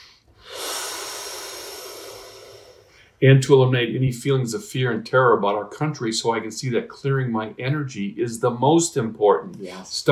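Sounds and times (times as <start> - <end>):
person taking one long steady breath: 0.0 - 3.2
speech: 3.2 - 10.1.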